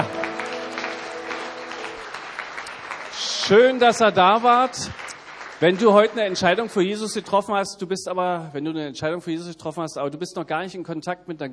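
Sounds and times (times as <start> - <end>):
church congregation applause: 0.0 - 7.2
speech: 3.5 - 5.0, 5.6 - 11.5.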